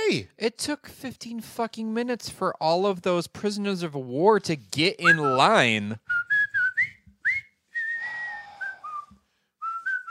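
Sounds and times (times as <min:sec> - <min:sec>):
speech: 0:00.1 - 0:06.2
whistled jaunty march-like melody: 0:05.0 - 0:10.1.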